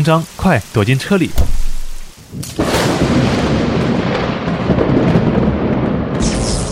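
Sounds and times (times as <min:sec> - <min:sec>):
speech: 0:00.0 - 0:01.6, 0:02.3 - 0:03.4
rain hiss: 0:00.0 - 0:05.0, 0:06.1 - 0:06.7
thunder crack and rumble: 0:01.4 - 0:06.7.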